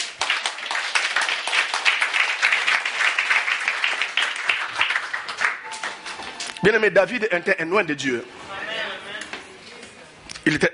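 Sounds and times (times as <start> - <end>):
church congregation clapping to acclaim the Lord: 0.0 - 6.9
speech: 6.6 - 8.4, 10.4 - 10.7.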